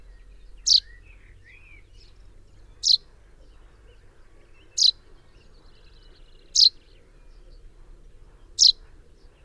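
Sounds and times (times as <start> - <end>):
common chaffinch Fringilla coelebs calling: 0.6 - 0.9, 2.8 - 3.0, 4.8 - 5.0, 6.6 - 6.8, 8.6 - 8.8.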